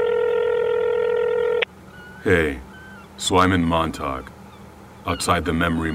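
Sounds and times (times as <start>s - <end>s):
steady electronic phone tone: 0.0s - 1.7s
speech: 2.2s - 4.4s, 5.0s - 5.9s.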